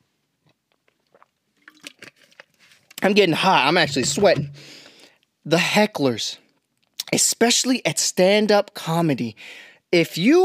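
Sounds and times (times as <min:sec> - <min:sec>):
someone sipping juice, slurping and swallowing: 0:00.7 - 0:03.0
speech: 0:03.0 - 0:04.8, 0:05.5 - 0:06.4, 0:07.1 - 0:10.4.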